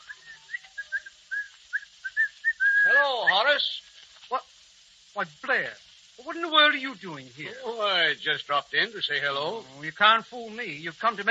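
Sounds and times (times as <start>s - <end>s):
man whistling cheerfully while coming down the stairs: 0.0s - 3.5s
speech: 3.0s - 4.5s, 5.2s - 11.3s.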